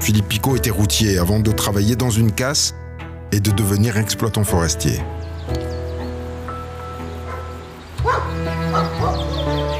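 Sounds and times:
speech: 0.1s - 5.3s
hunting dogs barking outdoors: 7.2s - 9.7s.

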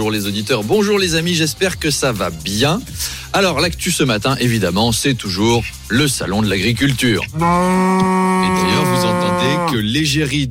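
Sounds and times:
speech: 0.0s - 10.4s
Normande cow mooing: 7.4s - 9.8s.

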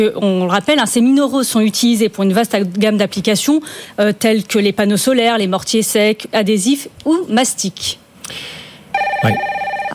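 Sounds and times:
speech: 0.0s - 8.6s, 9.2s - 9.5s
telephone ringing with an electronic warble: 9.0s - 9.9s.

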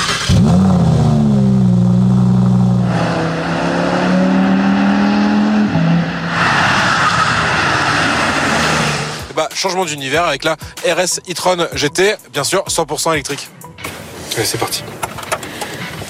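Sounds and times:
petrol sports car engine revving and shifting gears as it accelerates on track: 0.0s - 9.3s
speech: 9.6s - 15.0s.

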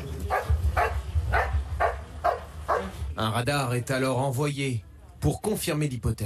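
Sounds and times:
search and rescue dog barking: 0.3s - 3.0s
speech: 3.2s - 6.2s.

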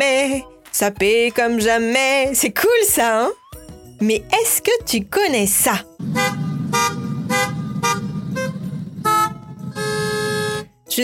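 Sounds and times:
speech: 0.0s - 3.4s, 4.0s - 7.0s
low rumble of idling car engines: 6.0s - 10.5s
car horns honking in rhythmic blasts at a concert in Le Mans France: 6.0s - 10.7s.

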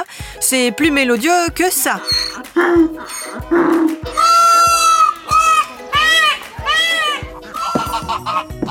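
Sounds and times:
speech: 0.4s - 4.2s
donkey braying: 1.6s - 8.7s
goose honking: 1.8s - 8.7s
peacock crying: 1.9s - 8.7s.

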